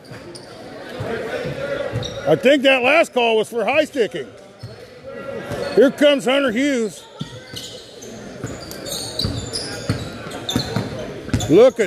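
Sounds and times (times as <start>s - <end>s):
speech: 2.3s - 4.4s, 5.8s - 7.1s, 11.5s - 11.8s
basketball dribbled on a court during a game: 9.2s - 11.6s.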